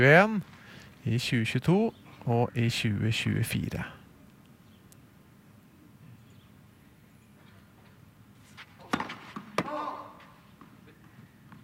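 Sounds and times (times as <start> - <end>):
speech: 0.0 - 4.0
tennis ball bouncing on a hard court: 8.8 - 11.6.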